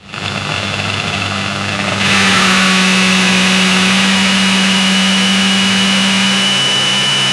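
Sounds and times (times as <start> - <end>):
LTZ 400 quad ATV engine: 0.0 - 7.2.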